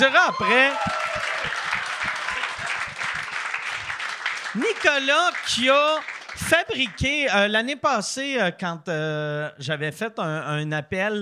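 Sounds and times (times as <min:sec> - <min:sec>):
speech: 0:00.0 - 0:01.6, 0:04.5 - 0:11.2
audience applause: 0:00.0 - 0:07.2.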